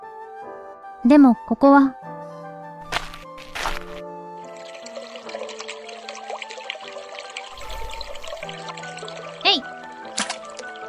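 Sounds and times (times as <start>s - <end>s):
speech: 1.0s - 2.0s
water pouring and trickling: 2.9s - 10.8s.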